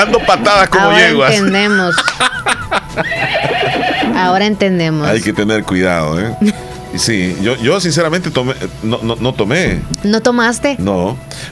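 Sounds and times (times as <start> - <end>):
speech: 0.0 - 3.6, 4.2 - 11.5
laughter: 1.1 - 4.2
horse neighing loudly: 3.0 - 4.4.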